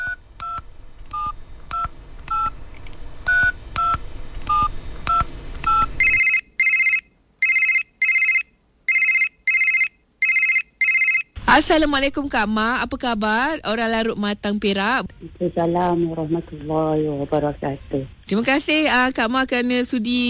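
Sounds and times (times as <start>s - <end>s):
phone ringing in short repeated bursts: 0.0s - 2.6s, 3.2s - 11.4s
touch-tone dialing beeps: 3.3s - 11.3s
speech: 11.6s - 20.2s.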